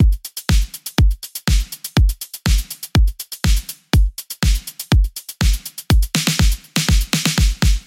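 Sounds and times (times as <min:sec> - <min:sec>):
full drum kit playing at 122 BPM: 0:00.0 - 0:07.8.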